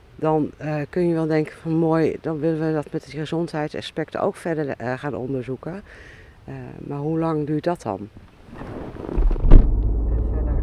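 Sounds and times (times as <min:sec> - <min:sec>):
speech: 0:00.2 - 0:08.7
car engine rumble driving toward a community building: 0:08.3 - 0:10.6
thump: 0:08.5 - 0:10.6.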